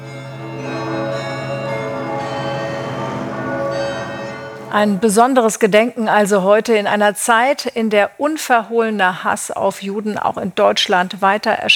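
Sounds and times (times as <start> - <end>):
church bells of Halle ringing in remembrance of an attack: 0.0 - 6.0
speech: 4.7 - 11.7.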